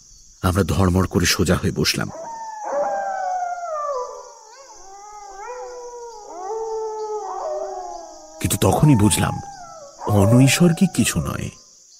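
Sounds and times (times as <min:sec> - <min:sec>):
speech: 0:00.4 - 0:02.3, 0:08.4 - 0:09.5, 0:10.1 - 0:11.6
pack of jackals howling together: 0:02.1 - 0:11.6.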